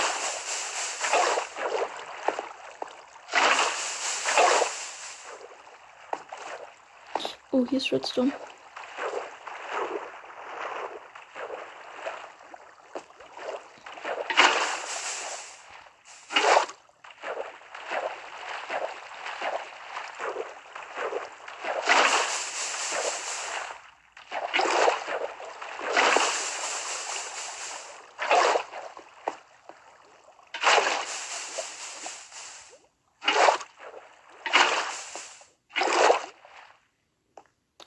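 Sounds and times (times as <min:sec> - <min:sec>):
sloshing hissing bursts of water over lava: 0:00.0 - 0:05.6, 0:13.4 - 0:16.7, 0:17.3 - 0:23.9, 0:24.5 - 0:29.0, 0:30.6 - 0:36.1
video game water pouring over lava: 0:00.0 - 0:16.6, 0:17.6 - 0:23.8, 0:24.4 - 0:29.8, 0:30.6 - 0:33.6, 0:34.3 - 0:36.1
speech: 0:07.6 - 0:08.5.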